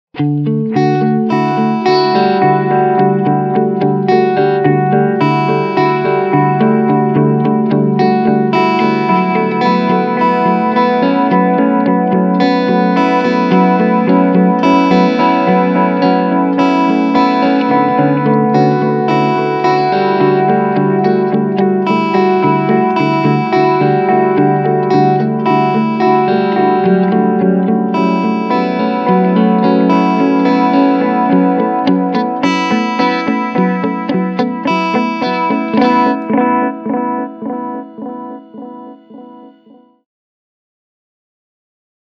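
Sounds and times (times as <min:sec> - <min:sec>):
analog echo effect: 0:00.2 - 0:39.8.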